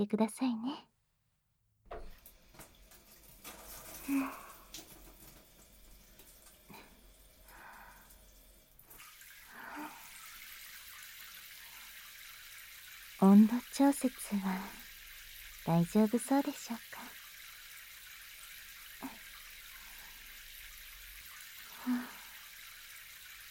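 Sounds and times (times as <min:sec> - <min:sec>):
speech: 0:00.0 - 0:00.9, 0:04.1 - 0:04.9, 0:13.2 - 0:14.8, 0:15.6 - 0:17.2
knocks and splashes: 0:01.9 - 0:06.0
running water wetting hair during a hair wash: 0:01.9 - 0:23.5.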